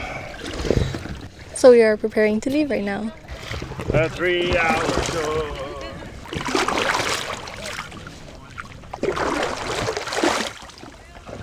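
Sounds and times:
water sloshing as oars row a small boat out into the sea: 0.0 - 11.4
speech: 1.6 - 3.2, 3.9 - 5.5
faint voices murmuring: 2.5 - 9.0.

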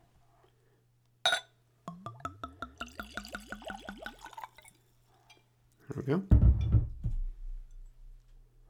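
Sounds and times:
brandy pouring from a screw-cap bottle into a Glencairn glass: 1.9 - 4.8
speech: 5.9 - 6.8.

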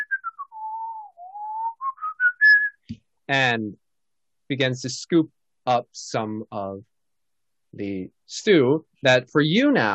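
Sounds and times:
woman whistling a short wandering tune: 0.0 - 2.8
speech: 2.9 - 3.8, 4.5 - 6.9, 7.7 - 9.9.

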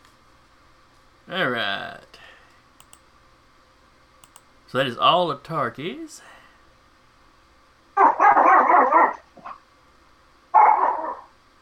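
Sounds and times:
speech: 1.3 - 2.0, 4.7 - 6.4
puppy barking and yipping: 8.0 - 9.6, 10.5 - 11.3.

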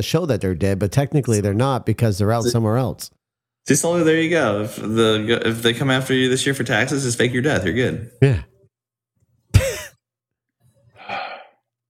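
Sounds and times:
speech: 0.0 - 8.5
sharp rasping partly voiced gasp: 10.9 - 11.6
longer breathy exhale: 11.0 - 11.6.

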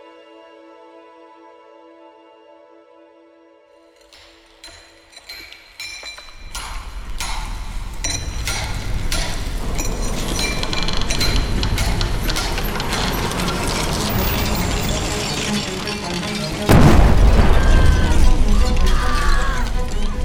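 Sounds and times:
mechanical clatter and ratcheting in a coal mine: 4.0 - 20.2
coal mine explosion boom with deep rumble: 16.7 - 20.2.

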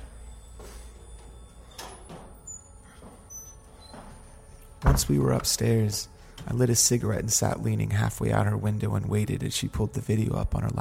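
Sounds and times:
door opening and closing: 1.6 - 5.5
speech: 4.8 - 10.7.

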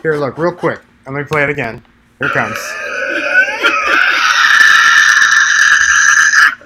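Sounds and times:
speech: 0.0 - 3.0
two Tasmanian devils screeching at each other face to face: 2.2 - 6.6.

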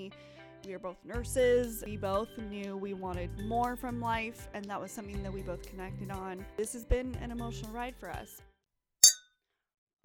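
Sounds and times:
speech: 0.1 - 8.5
drinking glasses clinking in a toast: 9.0 - 9.2.

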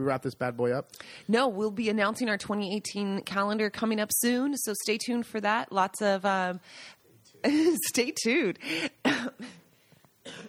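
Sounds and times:
speech: 0.0 - 9.6
raspy cough from a lingering autumn cough: 8.8 - 9.6, 10.2 - 10.4.

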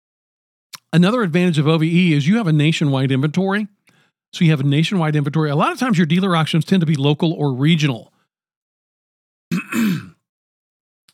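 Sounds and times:
speech: 0.9 - 8.1
rough two-part throat clearing: 9.5 - 10.3.

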